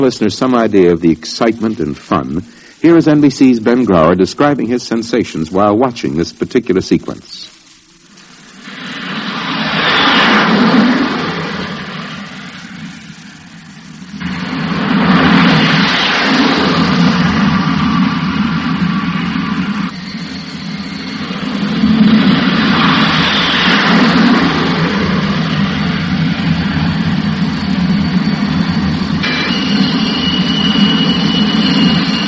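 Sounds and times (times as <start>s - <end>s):
speech: 0.0s - 7.5s
jet aircraft engine roaring: 0.0s - 32.2s.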